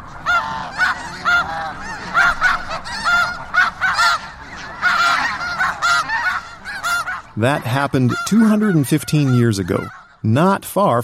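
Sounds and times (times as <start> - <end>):
large flock of geese honking: 0.0 - 11.0
speech: 7.4 - 11.0.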